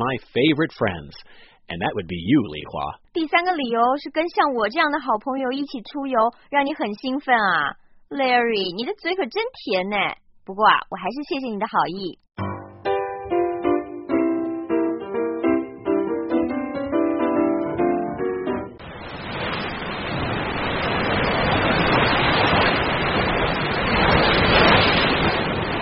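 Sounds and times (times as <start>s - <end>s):
speech: 0.0s - 12.5s
short bright musical phrase: 12.4s - 18.8s
ocean surf waves washing onto beach shore: 18.8s - 25.7s.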